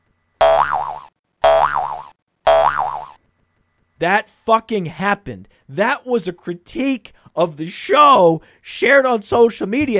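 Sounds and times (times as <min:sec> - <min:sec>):
twangy springy cartoon boing effect: 0:00.4 - 0:03.2
speech: 0:04.0 - 0:09.9.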